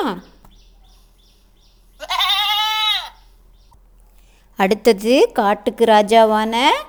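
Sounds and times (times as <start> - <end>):
speech: 0.0 - 0.3, 4.6 - 6.8
goat bleating: 2.0 - 3.2.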